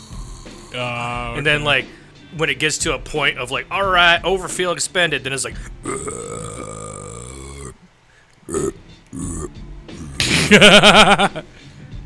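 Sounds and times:
speech: 0.7s - 6.4s, 10.5s - 11.6s
man imitating a slow decompressing belch: 5.8s - 7.9s, 8.5s - 10.3s
laughter: 10.2s - 11.5s.

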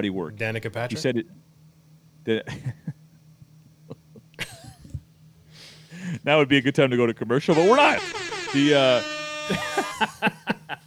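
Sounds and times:
speech: 0.0s - 1.5s, 2.3s - 3.0s, 6.0s - 10.6s
laughter: 2.5s - 3.0s, 3.9s - 5.0s, 9.5s - 10.8s
loud brassy air horn blast: 7.5s - 9.8s.

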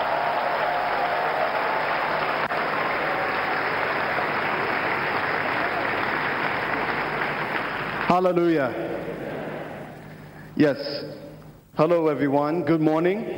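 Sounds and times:
church congregation applauding during a worship service: 0.0s - 10.0s
speech: 8.1s - 9.2s, 10.6s - 11.2s, 11.8s - 13.3s.

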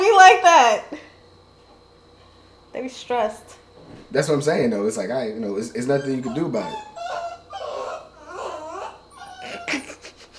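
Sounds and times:
speech: 0.3s - 1.0s, 2.8s - 7.3s
female dog whimpering: 5.7s - 10.3s.

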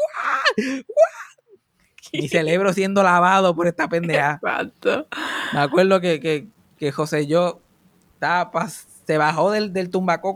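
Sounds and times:
person imitating crying from emotion: 0.0s - 1.4s, 3.8s - 5.9s
speech: 0.6s - 1.2s, 2.1s - 7.6s, 8.2s - 10.3s.

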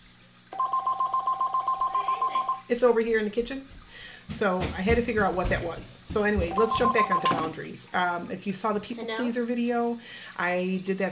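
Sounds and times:
faint hum: 0.0s - 11.1s
phone ringing with electronic trill: 0.5s - 2.7s, 6.5s - 7.5s
speech: 2.7s - 11.1s.

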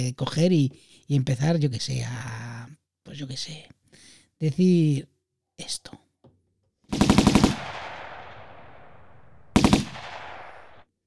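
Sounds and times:
speech: 0.0s - 2.4s, 3.1s - 6.0s
automatic gunfire: 6.9s - 10.8s.

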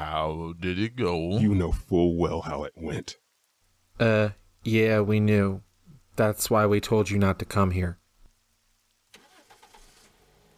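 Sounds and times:
speech: 0.2s - 3.2s, 4.0s - 8.0s
car engine cranking and starting: 9.2s - 10.5s.

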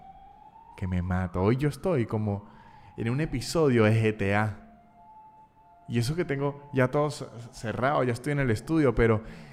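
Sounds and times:
ambulance siren wailing outside: 0.0s - 9.5s
speech: 0.8s - 4.6s, 5.9s - 9.5s.

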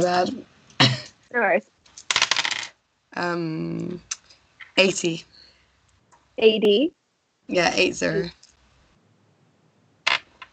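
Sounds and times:
speech: 0.0s - 0.5s, 1.3s - 1.7s, 3.1s - 4.1s, 4.8s - 5.3s, 6.4s - 8.4s
dice rolling on a table: 2.0s - 2.8s.

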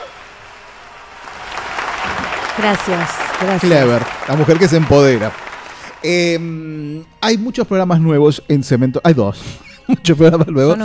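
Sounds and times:
crowd applause: 0.0s - 6.2s
laughter: 1.2s - 5.9s
speech: 2.6s - 5.4s, 6.0s - 10.8s.

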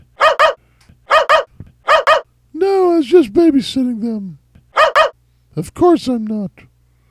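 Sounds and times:
dog barking: 0.2s - 2.3s, 4.8s - 5.2s
speech: 3.0s - 4.4s, 5.6s - 6.7s.

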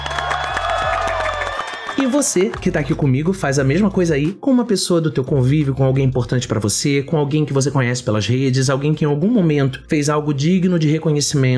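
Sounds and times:
cheering: 0.0s - 3.0s
crowd applause: 0.0s - 3.0s
speech: 2.0s - 11.5s.

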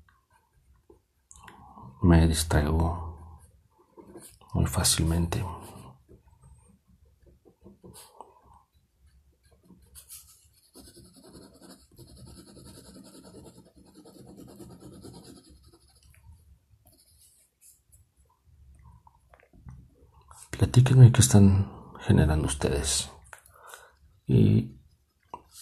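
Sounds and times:
speech: 2.0s - 3.1s, 4.5s - 5.7s, 20.8s - 23.2s, 24.3s - 24.8s
pencil scratching across paper while drawing: 9.4s - 17.8s.

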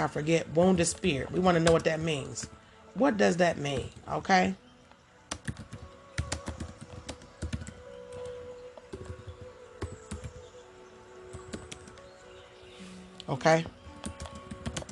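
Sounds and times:
speech: 0.0s - 4.6s, 13.3s - 13.8s
typing on a computer keyboard: 5.3s - 10.4s, 11.3s - 12.0s, 13.9s - 14.9s.

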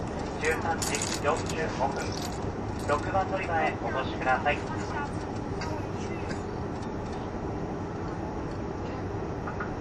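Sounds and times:
faint clicks and rattles inside a diesel railcar: 0.0s - 7.3s
KiHa 71 series diesel railcar engine and track drone: 0.0s - 9.7s
speech: 0.4s - 5.3s.

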